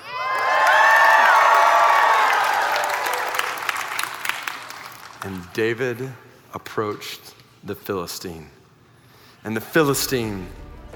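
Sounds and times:
large army crowd roaring and cheering: 0.0s - 5.3s
scattered clapping: 1.2s - 5.5s
speech: 5.6s - 8.6s, 9.4s - 10.9s.

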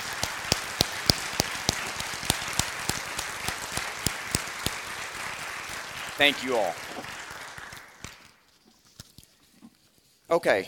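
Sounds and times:
audience applauding: 0.0s - 8.5s
one set of hands clapping in a quick even rhythm: 0.0s - 8.5s
speech: 6.2s - 7.1s, 10.3s - 10.6s.

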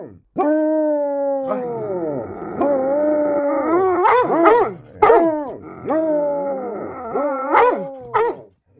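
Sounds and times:
dogs howling: 0.4s - 8.5s
dogs woofing: 2.4s - 8.7s.

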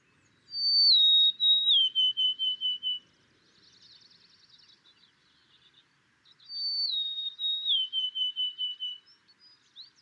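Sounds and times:
softer twittering bird: 0.0s - 3.0s, 6.5s - 9.2s
golden-crowned sparrow singing in Alaska: 0.0s - 10.0s.

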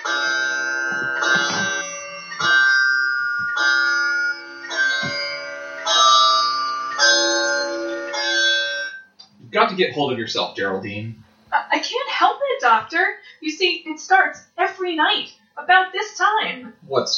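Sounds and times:
large hall clock chiming: 0.0s - 9.2s
speech: 9.7s - 11.2s, 11.8s - 17.1s.

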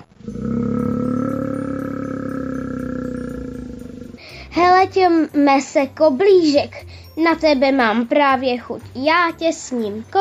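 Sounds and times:
bear growling: 0.0s - 4.4s
speech: 4.6s - 10.1s.

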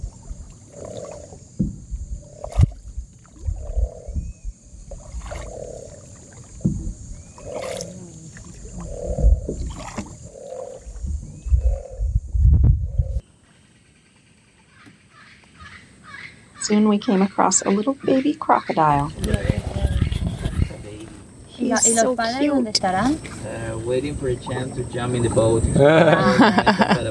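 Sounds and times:
water: 0.0s - 12.6s, 16.6s - 27.0s
low rumbling boat: 0.0s - 13.2s, 17.3s - 27.0s
tiger heron calling with deep hoarse grunts: 0.7s - 2.6s, 3.5s - 12.1s, 14.7s - 20.8s
speech: 16.7s - 19.5s, 21.7s - 27.0s
laughter: 24.2s - 27.0s.

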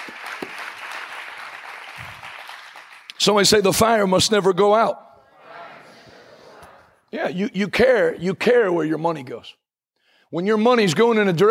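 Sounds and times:
church congregation applause during a worship service: 0.0s - 3.5s
speech: 3.2s - 5.0s, 7.3s - 9.6s, 10.3s - 11.4s.

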